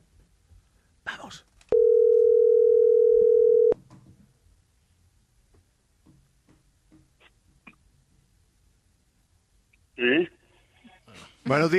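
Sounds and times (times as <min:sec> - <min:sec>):
faint low noise: 0:00.0 - 0:11.7
speech: 0:01.3 - 0:01.5, 0:11.5 - 0:11.7
telephone dial tone: 0:01.7 - 0:03.8.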